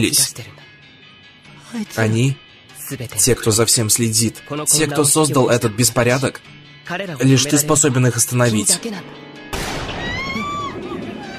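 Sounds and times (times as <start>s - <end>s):
speech: 0.0s - 0.6s, 1.7s - 9.3s
gunshot: 9.5s - 11.2s.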